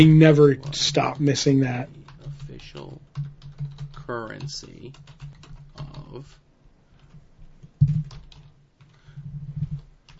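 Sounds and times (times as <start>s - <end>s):
speech: 0.0s - 2.0s, 2.8s - 3.3s, 4.1s - 5.2s, 5.8s - 6.4s
loud typing on a computer keyboard: 2.0s - 6.2s, 7.0s - 10.1s.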